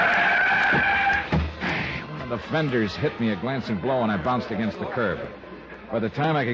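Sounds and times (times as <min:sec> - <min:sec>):
car tire screech on a street: 0:00.0 - 0:02.0
speech: 0:02.4 - 0:06.5.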